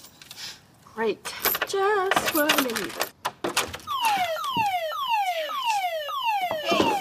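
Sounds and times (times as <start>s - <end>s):
speech: 1.0s - 3.1s
home security alarm blaring: 3.9s - 6.9s.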